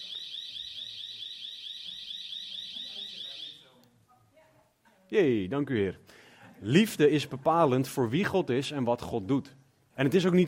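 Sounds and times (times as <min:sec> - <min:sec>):
loud continuous high-pitched warbling alarm: 0:00.0 - 0:03.7
speech: 0:05.1 - 0:10.4.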